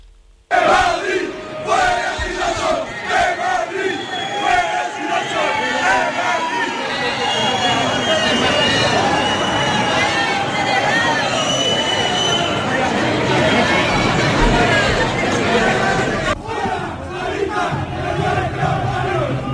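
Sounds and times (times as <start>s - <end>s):
crowd shouting slogans at a street march: 0.5s - 19.5s.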